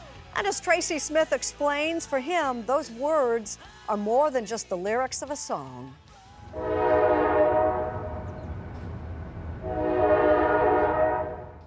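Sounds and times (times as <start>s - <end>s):
speech: 0.4s - 6.7s
train on the New Jersey rail line at Red Bank rumbling past: 6.4s - 11.6s
long loud train horn blasts: 6.5s - 8.4s, 9.6s - 11.6s.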